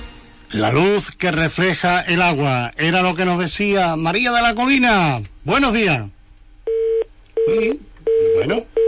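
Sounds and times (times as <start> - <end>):
speech: 0.6 - 6.9, 7.5 - 8.8
telephone tones after a dropped phone call: 6.7 - 8.8.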